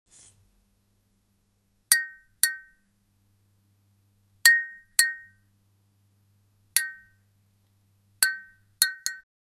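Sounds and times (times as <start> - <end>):
sharp glass clink: 1.9 - 2.8, 4.5 - 5.4, 6.8 - 7.2, 8.2 - 9.2.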